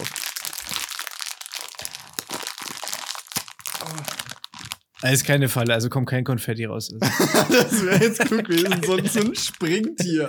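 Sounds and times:
crinkly plastic candy bag torn open and crumpled: 0:00.0 - 0:05.2
speech: 0:05.0 - 0:10.2
laughter: 0:07.0 - 0:10.2.

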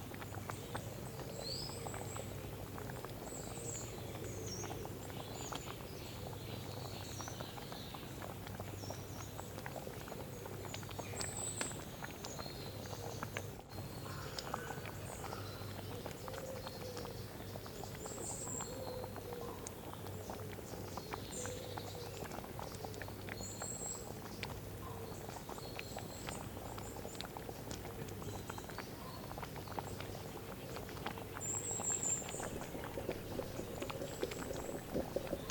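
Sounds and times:
soup boiling with small pops and bubbles: 0:00.0 - 0:35.5
low constant hum: 0:32.2 - 0:35.5
faint high chirps, likely birds outside: 0:32.3 - 0:35.5.

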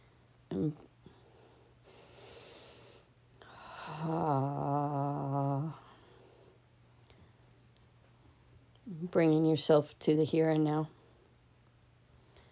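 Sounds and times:
speech: 0:00.5 - 0:00.9, 0:03.9 - 0:04.7, 0:09.2 - 0:11.0
deep breathing during a guided relaxation exercise: 0:01.0 - 0:07.6
sniff: 0:01.9 - 0:03.1.

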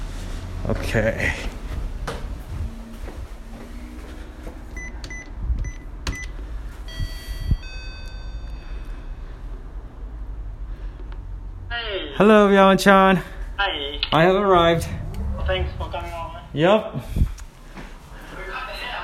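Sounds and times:
speech: 0:00.7 - 0:01.5, 0:12.2 - 0:17.2
electronic telephone keypad beeps: 0:04.8 - 0:08.6.

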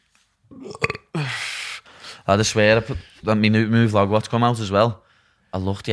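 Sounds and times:
low gurgling burp: 0:00.5 - 0:01.2
speech: 0:00.6 - 0:00.9, 0:02.3 - 0:05.9
steady breathy rush of noise: 0:01.1 - 0:02.3.

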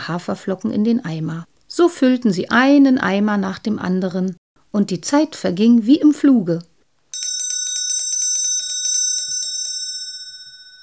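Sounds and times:
speech: 0:00.0 - 0:06.7
bright metallic bell ringing for lunch break: 0:07.1 - 0:10.8.

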